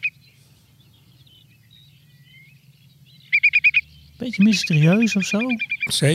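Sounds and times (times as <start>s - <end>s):
whimbrel calling with sharp whistled notes: 0.0s - 0.2s, 1.6s - 6.0s
speech: 4.2s - 6.1s.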